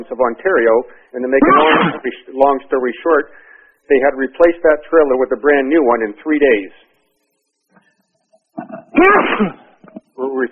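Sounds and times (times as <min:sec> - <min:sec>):
speech: 0:00.0 - 0:06.9, 0:08.6 - 0:09.6, 0:10.2 - 0:10.5
person sneezing on an open microphone during a group call: 0:01.4 - 0:02.0, 0:08.6 - 0:09.7.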